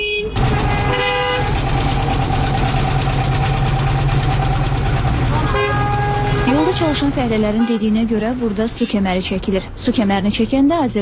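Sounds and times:
car horn toots: 0.0s - 1.6s, 5.3s - 8.1s
car and truck engines rumbling past roadworks: 0.0s - 11.0s
speech: 6.8s - 11.0s.

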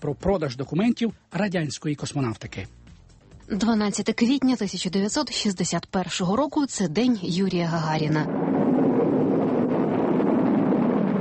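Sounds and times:
speech: 0.0s - 2.8s, 3.5s - 8.6s
crewed rocket launch roar with deep rumbling core: 7.8s - 11.1s.

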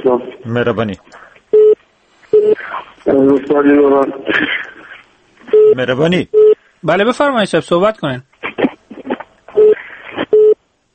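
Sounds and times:
speech: 0.0s - 1.2s, 3.2s - 4.7s, 5.7s - 8.3s
telephone line busy tone beeps after a call cuts off: 1.6s - 1.8s, 2.4s - 2.6s, 5.5s - 5.8s, 6.4s - 6.6s, 9.6s - 10.6s.

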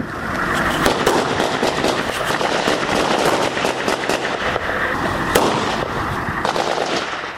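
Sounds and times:
gunfire near an Afghan forces post beside civilian houses: 0.8s - 4.6s, 5.3s - 7.3s.

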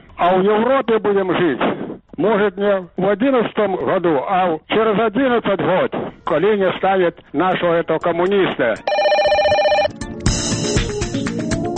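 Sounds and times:
speech: 0.2s - 9.0s
bright burst of music: 7.4s - 11.7s
telephone bell ringing: 8.9s - 10.0s.

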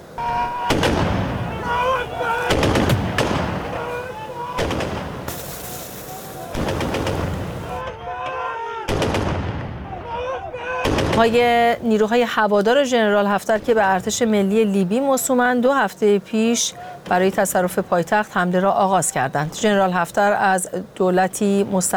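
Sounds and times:
booming explosions during urban fighting: 0.3s - 3.9s, 4.6s - 7.9s, 8.9s - 10.1s, 10.8s - 11.7s
gunshots during urban fighting: 0.4s - 4.0s, 4.6s - 7.9s, 8.9s - 10.1s, 10.8s - 11.4s
speech: 11.2s - 21.9s.

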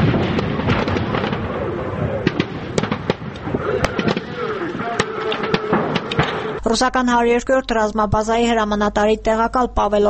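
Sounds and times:
rocket artillery and tank guns firing during a military exercise in the Alagyaz mountains: 0.0s - 6.6s
constant rumbling background: 0.0s - 10.0s
speech: 6.7s - 10.0s.

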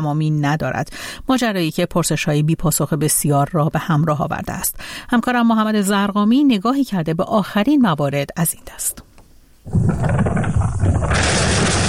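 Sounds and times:
speech: 0.0s - 11.5s
loud deep explosion boom: 9.7s - 11.8s.

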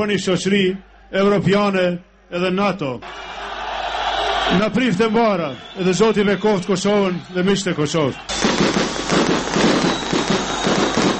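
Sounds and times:
speech: 0.0s - 3.4s, 4.5s - 8.7s
fireworks set off to celebrate a homecoming in Kosovo: 8.3s - 11.1s.

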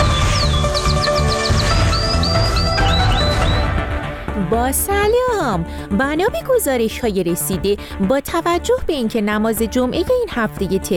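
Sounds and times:
canary chirping and whistling: 0.0s - 3.8s
speech: 4.6s - 10.9s.

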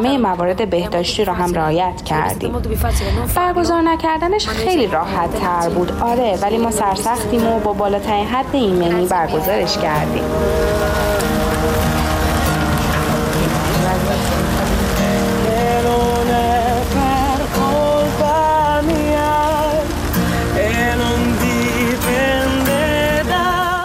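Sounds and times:
speech: 0.0s - 11.9s
steady rain outdoors at a street music festival in Ferrara: 0.0s - 23.8s
loud live music with melodic instruments or singing: 9.3s - 23.8s.

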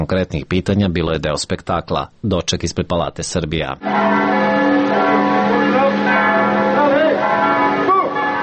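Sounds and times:
speech: 0.0s - 5.3s
church bells ringing in a dense peal: 3.8s - 8.4s.

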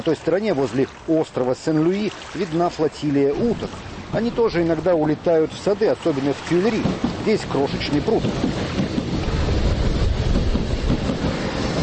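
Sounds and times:
speech: 0.0s - 8.8s
electric commuter train passing: 3.7s - 11.8s.

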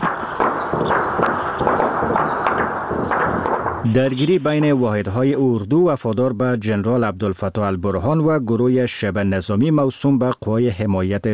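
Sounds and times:
gunfire during fighting in Khartoum Sudan: 0.0s - 4.9s
explosions during fighting in Khartoum Sudan: 0.0s - 5.2s
speech: 3.8s - 11.3s.

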